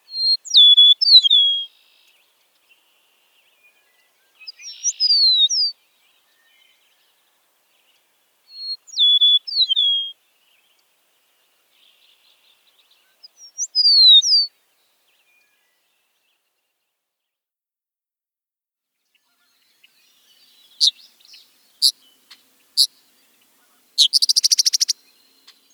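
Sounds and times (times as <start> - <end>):
Eastern Meadowlark singing: 0.1 - 10.8, 11.7 - 14.5, 19.1 - 25.7.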